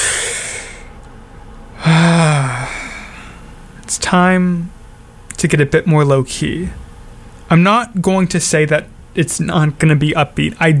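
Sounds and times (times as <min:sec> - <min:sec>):
deep breath in: 0:00.0 - 0:00.9, 0:01.8 - 0:03.5
loud drawn-out voiced exhale like a sigh: 0:00.0 - 0:00.9, 0:01.8 - 0:03.4
speech: 0:04.0 - 0:04.8, 0:05.4 - 0:06.8, 0:07.5 - 0:10.7.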